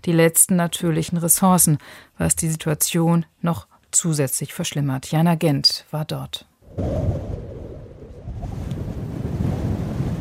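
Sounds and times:
speech: 0.0 - 7.4
strong wind roaring across open dunes in southern Madagascar: 6.6 - 10.1.

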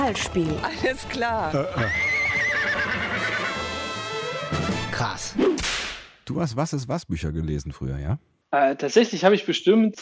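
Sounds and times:
speech: 0.1 - 3.3, 5.0 - 5.7, 6.3 - 9.9
horse neighing: 1.6 - 3.7.

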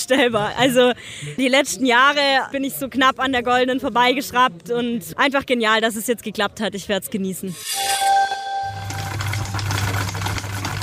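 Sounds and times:
speech: 0.1 - 8.2
high tonal sound: 7.5 - 10.2
sewing machines running: 8.6 - 10.8.

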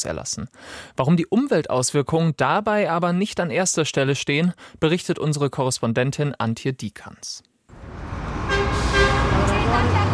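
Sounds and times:
speech: 0.0 - 8.2
rush-hour traffic engines at a four-lane square in Addis Ababa, Ethiopia: 7.7 - 10.1
car horn honking: 8.4 - 10.1.

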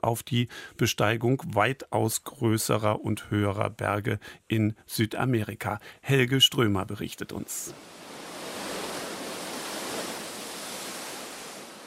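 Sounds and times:
speech: 0.0 - 8.0
Atlantic waves crashing against volcanic rocks: 7.4 - 11.8.

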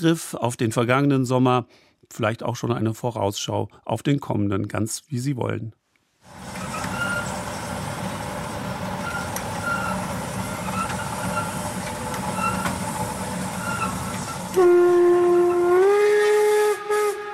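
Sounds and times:
speech: 0.0 - 6.6
old steam locomotive chugging while pulling wagons: 6.3 - 17.3
loud sustained steam whistle blast: 9.0 - 11.6, 12.3 - 12.9, 13.5 - 17.3.

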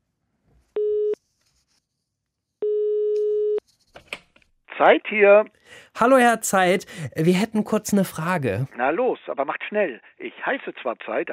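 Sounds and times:
telephone ringing tone on an outgoing call: 0.8 - 1.2, 2.6 - 3.6
speech: 4.8 - 11.3.

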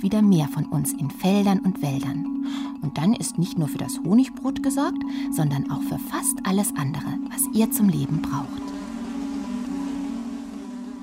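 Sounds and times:
speech: 0.0 - 8.7
bee buzzing: 7.1 - 11.0.

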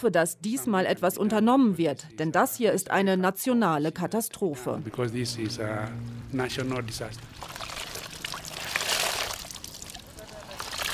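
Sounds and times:
speech: 0.0 - 7.5
river water splashing as young women wash clothes in a side arm of a river: 7.4 - 10.9.

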